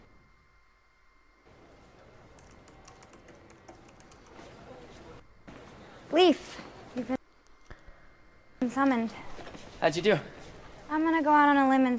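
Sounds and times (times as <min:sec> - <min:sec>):
low room hum: 0:00.0 - 0:11.9
fingers typing on a computer keyboard: 0:02.1 - 0:04.8
speech: 0:06.2 - 0:07.2, 0:08.7 - 0:11.9.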